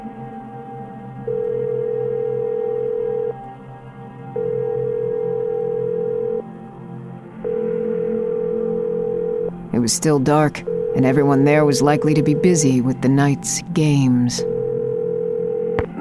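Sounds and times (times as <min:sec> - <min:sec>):
payphone line electronic tone bursts after dialing: 0:01.3 - 0:03.4, 0:04.4 - 0:06.4, 0:07.5 - 0:09.5, 0:10.7 - 0:11.3, 0:14.5 - 0:15.8
speech: 0:09.9 - 0:14.5.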